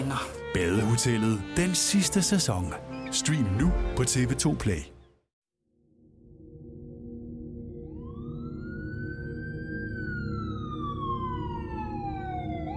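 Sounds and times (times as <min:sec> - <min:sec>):
speech: 0:00.1 - 0:05.0
police siren wailing: 0:07.7 - 0:12.7.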